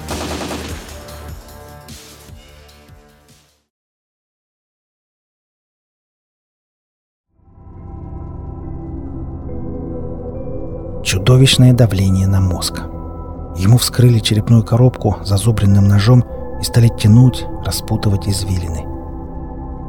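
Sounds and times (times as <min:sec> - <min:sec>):
automatic rifle fire: 0:00.0 - 0:01.2
speech: 0:11.1 - 0:13.0, 0:13.6 - 0:18.9.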